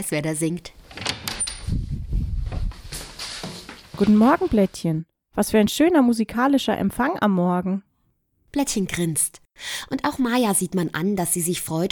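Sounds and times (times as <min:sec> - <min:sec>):
speech: 0:00.0 - 0:01.0, 0:04.0 - 0:07.9, 0:08.5 - 0:11.8
door creaking open as it swings: 0:00.9 - 0:01.8.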